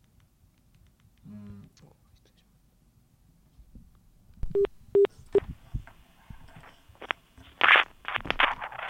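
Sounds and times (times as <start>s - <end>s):
short electronic telephone keypad dialing beeps: 4.5s - 5.1s
handling and rustling: 6.3s - 8.8s.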